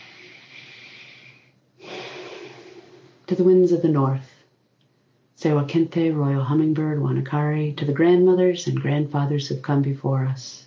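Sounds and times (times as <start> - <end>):
person taking a deep breath during the opening of a devotional gathering: 0.0 - 3.2
speech: 3.3 - 4.3, 5.4 - 10.6.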